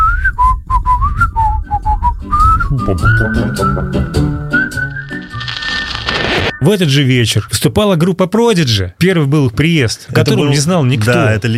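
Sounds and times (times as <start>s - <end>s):
person whistling a melody: 0.0s - 5.4s
speech: 2.9s - 4.3s, 6.6s - 11.5s.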